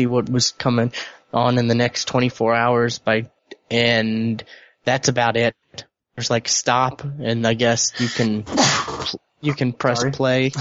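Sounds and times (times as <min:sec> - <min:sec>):
speech: 0:00.0 - 0:10.5
loud sneeze: 0:08.0 - 0:09.2.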